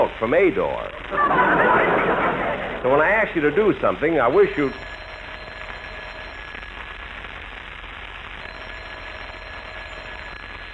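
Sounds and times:
speech: 0.0s - 1.9s, 2.8s - 4.9s
steady hiss: 0.0s - 10.7s
laughter: 1.1s - 3.1s
old-style telephone bell ringing: 4.2s - 6.8s, 8.4s - 10.7s.

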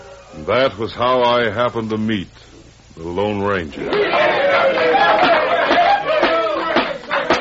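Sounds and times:
speech: 0.3s - 4.4s
murmur of many voices: 3.7s - 7.3s
indoor audience applause in a courtroom: 3.8s - 7.3s.

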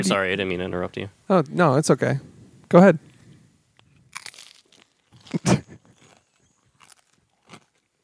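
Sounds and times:
speech: 0.0s - 3.1s
crackers from a snack pack crunching: 3.7s - 8.0s.

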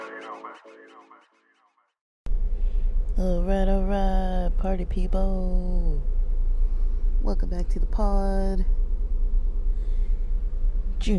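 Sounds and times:
car engine starting and idling: 2.3s - 11.1s
speech: 3.2s - 6.2s, 7.2s - 8.8s.

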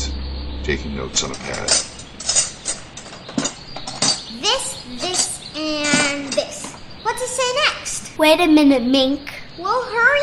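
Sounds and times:
speech: 0.7s - 1.9s, 4.4s - 10.2s
metal pots, pans, wrenches, forks and spoons clinking and clattering in a garden: 1.5s - 6.8s.

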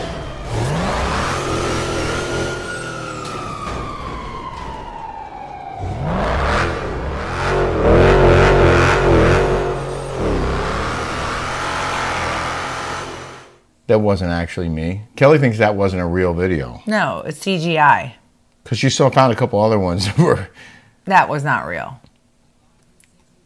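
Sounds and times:
Dodge Ram pickup truck engine revving hard: 0.0s - 3.2s, 5.8s - 13.6s
speech: 13.9s - 22.0s.

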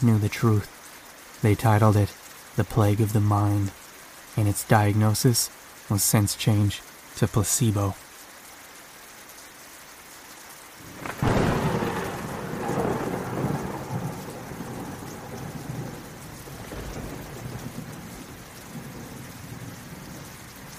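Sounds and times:
speech: 0.0s - 0.8s, 1.4s - 3.8s, 4.4s - 8.0s
heavy rain pouring in a storm: 0.0s - 20.7s
thunder crack rolling into a deep rumble: 10.8s - 20.7s.

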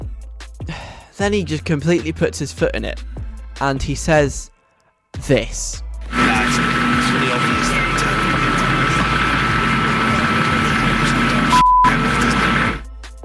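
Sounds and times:
speech: 1.2s - 4.5s, 5.2s - 6.7s
helicopter rotor roar: 6.1s - 12.8s.

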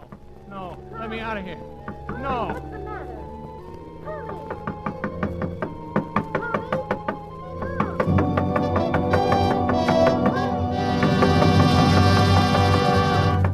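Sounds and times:
sustained musical backdrop: 0.0s - 13.5s
speech: 0.5s - 2.8s
firm knocking on a door: 1.8s - 2.6s, 4.2s - 13.5s.

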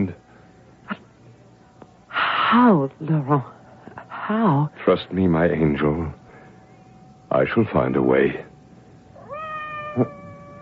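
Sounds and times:
speech: 2.5s - 3.6s, 4.3s - 6.2s, 7.3s - 8.5s, 10.0s - 10.2s
cat meowing outside a door: 9.2s - 10.6s.

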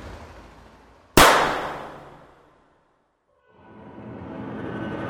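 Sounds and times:
small pistol shot: 1.2s - 2.4s.

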